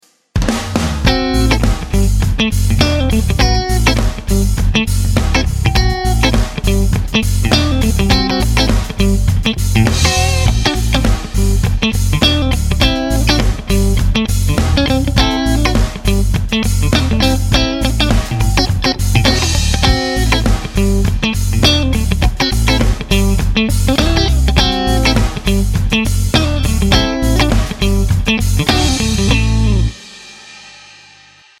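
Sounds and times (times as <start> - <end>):
clean funk guitar: 0.8 - 30.0.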